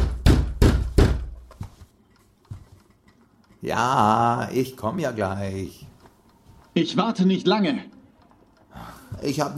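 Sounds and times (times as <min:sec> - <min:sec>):
police pounding on a wooden door in Hannover: 0:00.0 - 0:01.4
speech: 0:03.6 - 0:05.9, 0:06.8 - 0:08.0, 0:08.8 - 0:09.5.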